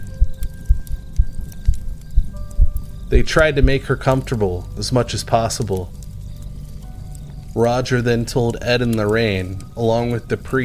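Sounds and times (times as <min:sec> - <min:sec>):
heartbeat thumping in deep pulses: 0:00.0 - 0:03.8
speech: 0:03.1 - 0:06.0, 0:07.6 - 0:10.6.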